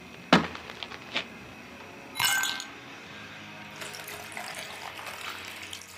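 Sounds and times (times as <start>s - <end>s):
glass clinking: 2.2s - 2.8s
man pouring liquid into a glass: 3.8s - 5.9s.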